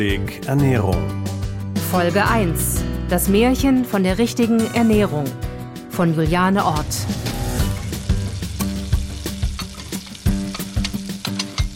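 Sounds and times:
speech: 0.0 - 1.3, 1.9 - 7.3
food frying in a paleo cook's kitchen in Mainz: 6.6 - 11.7
stirring clicks and scrapes: 9.5 - 11.7.

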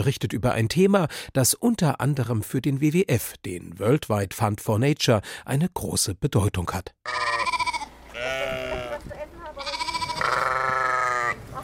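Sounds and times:
speech: 0.0 - 7.5
several sheep bleating while grazing on a pasture: 7.0 - 11.4.

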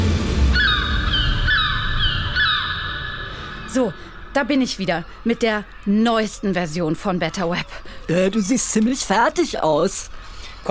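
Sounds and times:
steady low rumble: 0.0 - 4.4
seagulls crying: 0.4 - 5.8
speech: 3.8 - 10.6.

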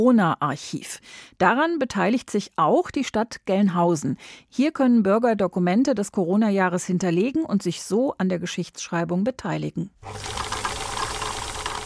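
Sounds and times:
speech: 0.0 - 10.5
sewing machine stitching: 10.0 - 11.8.

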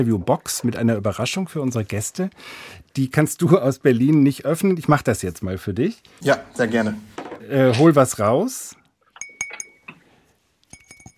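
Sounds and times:
speech: 0.0 - 8.8
ribbed apple wine glass with small diamond pattern clinking as handled: 9.2 - 10.0, 10.7 - 11.1.

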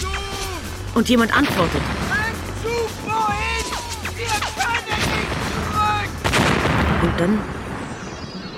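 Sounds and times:
constant low rumble: 0.0 - 8.2
speech: 1.0 - 2.2, 7.0 - 7.6
heavy booms: 1.4 - 7.8
rocket and gun fire barrage: 3.6 - 7.5.

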